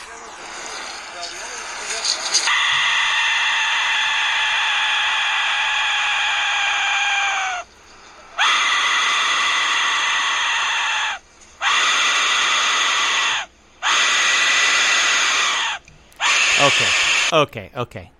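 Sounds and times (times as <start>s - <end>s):
Aztec death whistle shrieking in piercing screams: 2.4s - 7.7s, 8.4s - 17.4s
speech: 17.3s - 18.1s.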